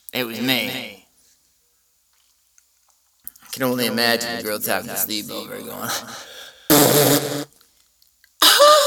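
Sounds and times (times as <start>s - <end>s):
speech: 0.1s - 0.8s, 3.6s - 7.4s
fart sounds: 6.7s - 7.5s.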